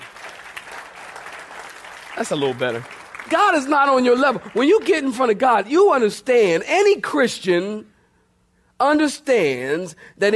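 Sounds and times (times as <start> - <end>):
crowd at a sermon clapping hands: 0.0 - 5.6
speech: 2.2 - 7.9, 8.8 - 10.3.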